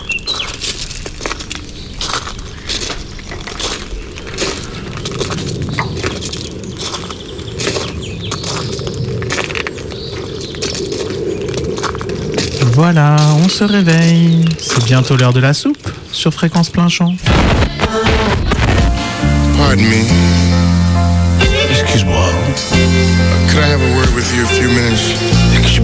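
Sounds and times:
many birds chirping and twittering in a meadow: 0.0 - 17.3
speech: 12.9 - 17.6, 19.7 - 20.4, 22.0 - 25.8
brief rising tonal sweep: 17.3 - 25.8.

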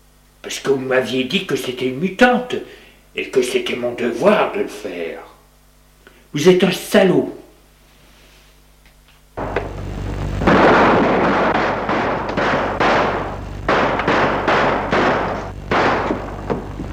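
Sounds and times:
speech: 0.5 - 5.3, 6.3 - 7.4
gunshot: 10.4 - 16.6.

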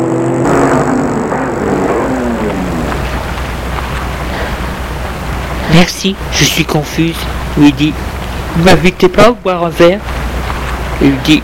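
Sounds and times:
car driving up and stopping in front of an apartment building in Paris: 0.0 - 5.7
car engine idling: 0.0 - 11.4
speech: 6.0 - 10.2, 11.0 - 11.4.

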